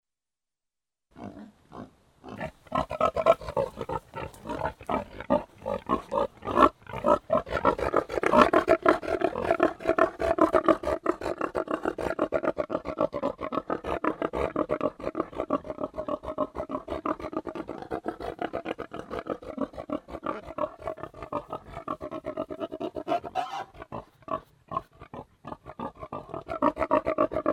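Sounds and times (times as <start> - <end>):
pigs grunting: 1.2 - 27.5.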